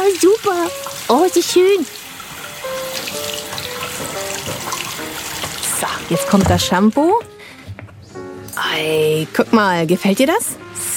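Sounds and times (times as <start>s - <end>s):
tap water running into a washbasin to wash hair: 0.0s - 7.2s
speech: 0.1s - 2.0s, 5.8s - 7.3s, 8.6s - 10.7s.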